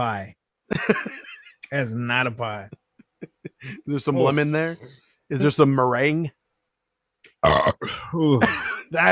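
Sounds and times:
speech: 0.0 - 2.8, 3.4 - 6.4, 7.4 - 9.1
laughter: 0.7 - 4.8, 8.3 - 9.1
person burping: 7.3 - 8.9.

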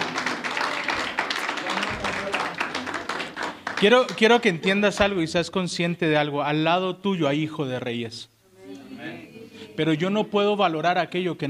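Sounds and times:
audience applause: 0.0 - 5.1
speech: 3.8 - 8.3, 9.8 - 11.4.

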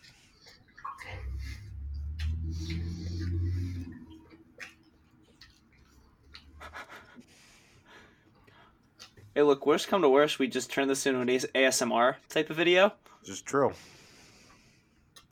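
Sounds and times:
person chewing food: 0.0 - 9.4
low rumble: 1.0 - 4.9
speech: 9.4 - 14.0.

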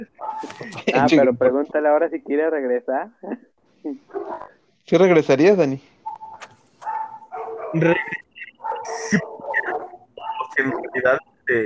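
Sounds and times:
laughter: 0.0 - 1.2, 7.8 - 11.0
dog barking: 0.2 - 0.6, 4.1 - 4.5, 6.0 - 11.0
speech: 0.9 - 5.9, 7.7 - 8.2, 8.8 - 9.3, 10.6 - 11.6.

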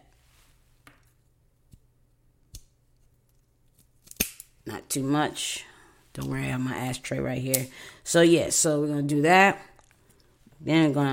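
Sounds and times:
cigar cutter snipping the twist off a cigar: 4.0 - 4.5
speech: 4.7 - 9.7, 10.6 - 11.1.

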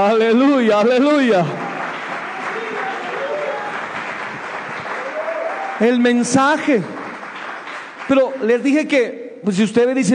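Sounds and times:
speech: 0.0 - 1.6, 5.8 - 7.0, 8.1 - 10.1
large crowd clapping: 0.0 - 9.0
cheers: 1.1 - 6.4.

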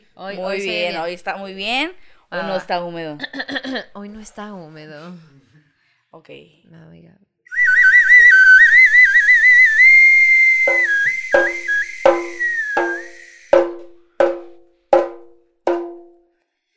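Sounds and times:
speech: 0.2 - 5.5, 6.1 - 7.7
shrill steam whistle from a sweet potato vendor's cart: 7.5 - 13.8
sharp knocking or clanking hits: 10.7 - 16.2.

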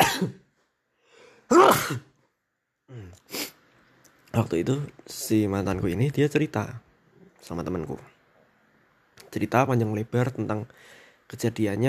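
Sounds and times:
person sneezing: 0.0 - 0.4, 1.5 - 2.1
speech: 0.2 - 0.4, 1.5 - 2.1, 4.4 - 6.8, 7.4 - 8.1, 9.3 - 11.8
faint sniff: 3.0 - 3.7.

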